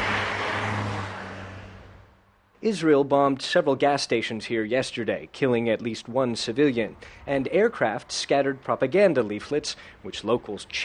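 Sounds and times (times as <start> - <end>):
car speeding past on an almost deserted town street: 0.0 - 2.4
speech: 2.6 - 10.8.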